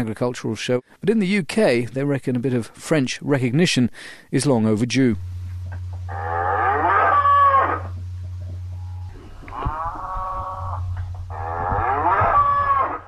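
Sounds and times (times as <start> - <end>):
speech: 0.0 - 5.3
steady low hum: 5.0 - 13.0
shaggy black and white Galloway cattle mooing loudly on a farm: 6.1 - 8.0, 8.7 - 13.0.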